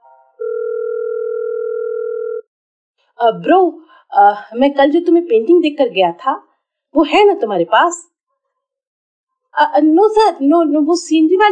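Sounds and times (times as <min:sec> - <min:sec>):
loud steady electronic telephone ring tone: 0:00.0 - 0:02.5
speech: 0:03.2 - 0:08.1, 0:09.5 - 0:11.5.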